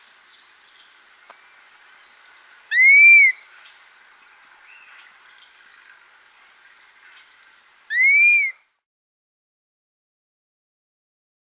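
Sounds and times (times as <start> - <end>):
quiet background bird notes: 0.0 - 8.6
dusky-capped flycatcher giving mournful slurred whistles in South America: 7.9 - 8.5.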